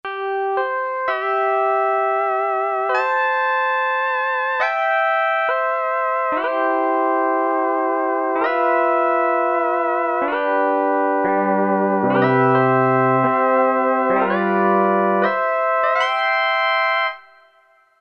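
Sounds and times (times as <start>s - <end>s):
lap steel guitar synthesizer preset: 1.1s - 17.1s.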